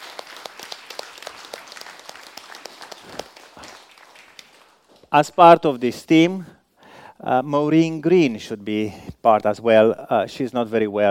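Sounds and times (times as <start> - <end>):
audience at a church service applauding: 0.0 - 5.1
speech: 5.1 - 6.5, 7.2 - 11.0.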